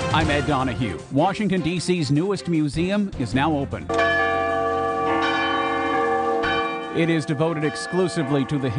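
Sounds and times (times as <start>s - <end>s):
speech: 0.2s - 4.2s, 7.0s - 8.7s
large bell rung at the opening of a new museum: 3.9s - 8.7s.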